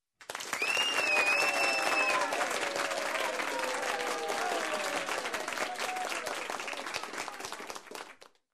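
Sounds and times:
crowd cheering after a performance: 0.3 - 8.2
people whistling after a performance: 0.6 - 2.5.

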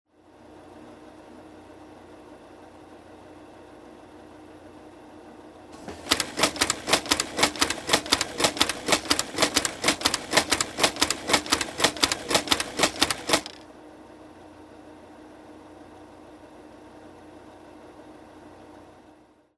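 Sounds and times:
automatic labelling machine running: 5.8 - 13.6.

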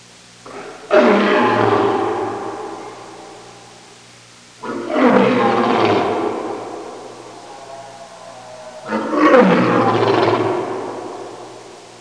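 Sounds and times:
mountain lion roar: 0.4 - 3.0, 4.6 - 11.6.

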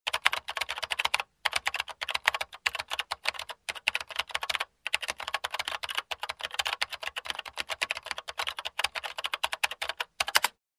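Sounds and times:
typing on keyboard: 0.1 - 10.6.

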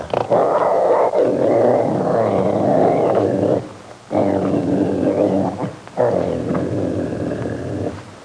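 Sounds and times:
generic growling: 0.0 - 8.1.

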